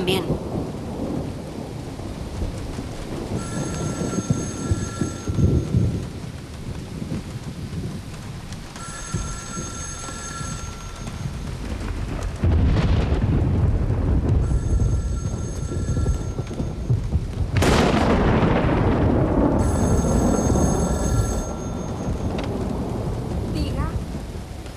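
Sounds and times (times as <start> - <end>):
low rumble of thunder: 0.0 - 24.7
steady rain in a thunderstorm: 0.0 - 24.7
bell-like ringing tone: 3.4 - 5.8, 8.8 - 11.5, 14.4 - 17.0, 19.6 - 22.4.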